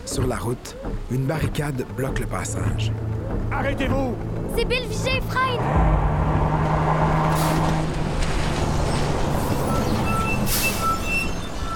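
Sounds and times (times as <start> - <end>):
rough road noise: 0.0 - 11.7
speech: 0.1 - 6.2
heavy truck engine rumbling: 2.4 - 11.7
truck skidding in mud: 5.7 - 11.7
truck air brakes hissing: 10.3 - 11.4.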